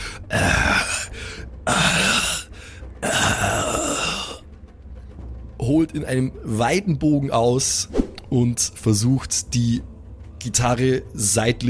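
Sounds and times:
speech: 0.3 - 0.6, 5.7 - 11.6
voice imitating groans of a badly wounded man: 0.3 - 4.4.

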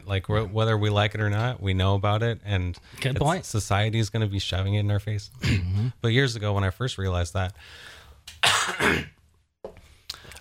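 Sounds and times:
speech: 0.1 - 8.0, 8.8 - 9.1
person clearing throat or coughing: 5.4 - 6.0, 8.4 - 9.2.

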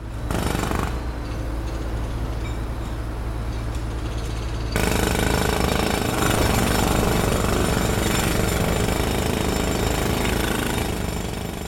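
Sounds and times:
construction machinery: 0.0 - 11.6
jackhammer pounding at a construction site: 0.3 - 1.1, 4.3 - 11.6.

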